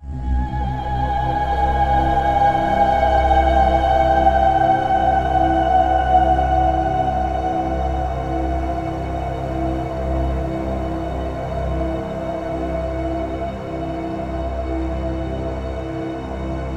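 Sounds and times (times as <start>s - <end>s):
mystic choir sweep: 0.0s - 16.7s.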